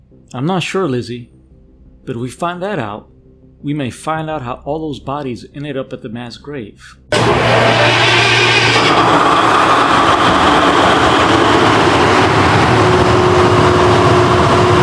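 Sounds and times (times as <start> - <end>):
speech: 0.3 - 1.4, 2.0 - 8.2
generator starting up with a loud mechanical drone: 7.1 - 14.8.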